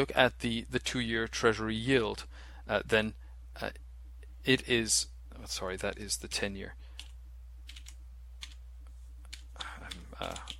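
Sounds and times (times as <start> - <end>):
speech: 0.0 - 3.8, 4.4 - 6.8, 10.2 - 10.5
typing on a computer keyboard: 7.0 - 8.6, 9.3 - 10.5.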